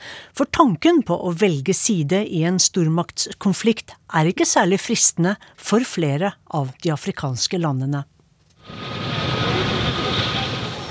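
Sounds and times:
speech: 0.4s - 9.2s
faint high whine of helicopter: 8.6s - 10.8s
helicopter coming in to land in Mali whirling up Sahara sand: 8.7s - 10.8s.

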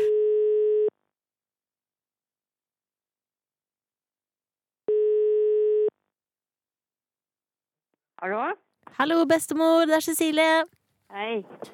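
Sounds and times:
buzzy telephone ringback tone of outgoing call: 0.0s - 0.9s, 4.9s - 5.9s
speech: 8.2s - 11.7s.

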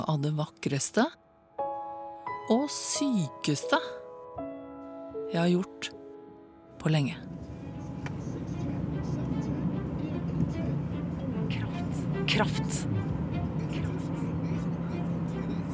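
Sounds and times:
speech: 0.0s - 1.2s, 2.5s - 4.0s, 5.3s - 6.0s, 6.8s - 7.4s, 12.4s - 13.2s
car road rumble and engine drone: 6.9s - 15.7s.

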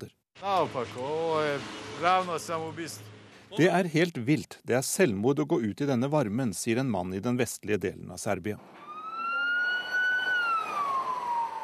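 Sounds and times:
speech: 0.0s - 8.8s
low traffic rumble: 0.4s - 5.3s, 8.5s - 11.6s
ambulance siren in Romania wailing: 8.7s - 11.6s.

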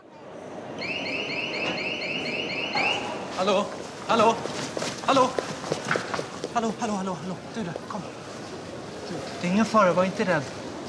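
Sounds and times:
alarm blaring in a rapid electronic warble: 0.8s - 3.1s
speech: 3.4s - 8.2s, 9.1s - 10.6s.

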